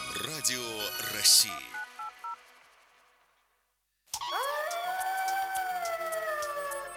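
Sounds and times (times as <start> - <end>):
speech: 0.2 - 1.8
electronic beep: 1.4 - 2.4
chorus of wolves howling: 4.3 - 6.9.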